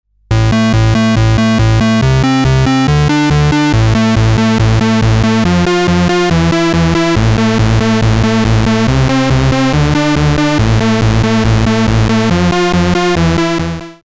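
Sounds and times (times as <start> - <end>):
Roland MC-202 synthesizer pulse width modulation: 0.3 - 14.0.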